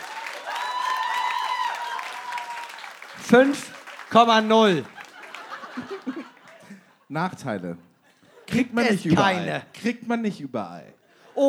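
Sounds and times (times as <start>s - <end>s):
voices cheering and whooping: 0.0s - 3.5s
loud shout: 0.0s - 3.6s
crowd applauding: 0.0s - 6.9s
laughter: 2.9s - 7.2s, 8.0s - 9.8s
speech: 3.2s - 5.0s, 7.1s - 7.9s, 8.5s - 11.4s.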